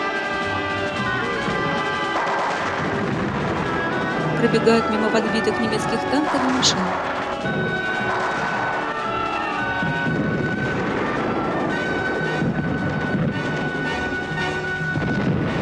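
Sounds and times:
steady tonal whining: 0.0s - 15.6s
artillery shells exploding in battle: 0.9s - 4.6s, 6.9s - 15.6s
speech: 4.4s - 7.9s.

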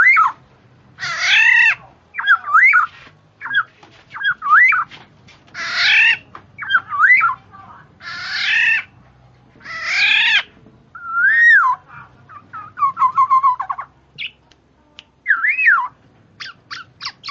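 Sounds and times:
female black-naped oriole calling with nasal mewing notes and whistles: 0.0s - 0.4s, 1.0s - 4.9s, 5.6s - 9.0s, 9.6s - 14.4s, 15.2s - 17.2s.

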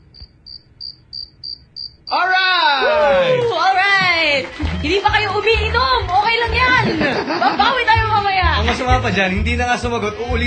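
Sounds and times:
cricket chirps played as a comedic sound effect at a live event: 0.0s - 2.2s
laughter: 3.0s - 9.0s
speech: 4.8s - 10.4s.

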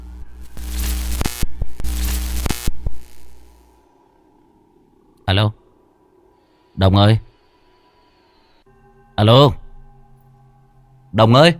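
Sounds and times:
walkie-talkie static crackling through the handset: 0.0s - 3.8s
steady low hum: 0.0s - 11.5s
speech: 5.3s - 5.6s, 6.8s - 7.3s, 9.2s - 9.6s, 11.1s - 11.5s.

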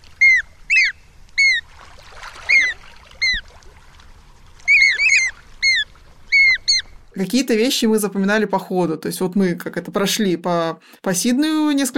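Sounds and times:
Australian magpie calling with a strange flute-like voice: 0.2s - 1.6s, 2.5s - 3.4s, 4.7s - 6.9s
speech: 7.2s - 11.9s.

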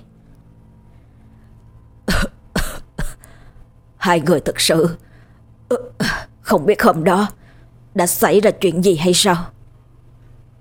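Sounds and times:
man coughing violently with a hand over his mouth: 2.0s - 3.2s
speech: 4.0s - 5.1s, 5.7s - 7.4s, 8.0s - 9.6s.

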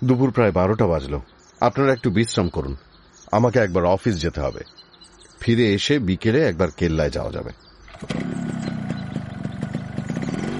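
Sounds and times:
speech: 0.0s - 4.8s, 5.4s - 8.6s
motorbike riding off with engine chugging: 7.9s - 10.5s.

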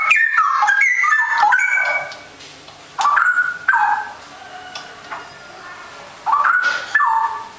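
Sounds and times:
Oriental magpie-robin giving whistled phrases: 0.0s - 2.2s, 3.0s - 4.1s, 6.3s - 7.5s.

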